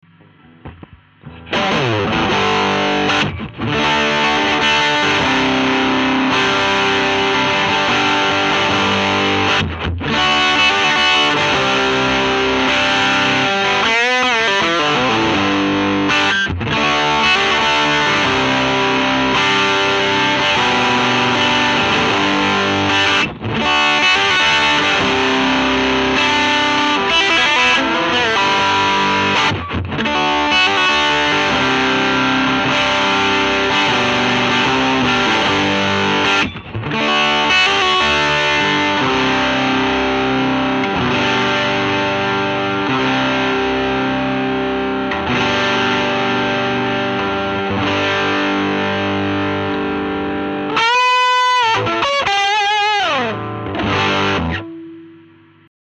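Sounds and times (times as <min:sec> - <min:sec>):
Stratocaster electric guitar distorted with MXR pedal: 0:00.0 - 0:55.7.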